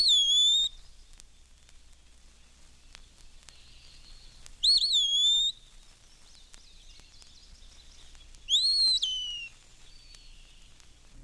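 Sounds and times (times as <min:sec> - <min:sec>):
Eastern Wood-Pewee slurred whistled phrases: 0:00.0 - 0:00.8, 0:04.2 - 0:05.6, 0:08.5 - 0:10.6.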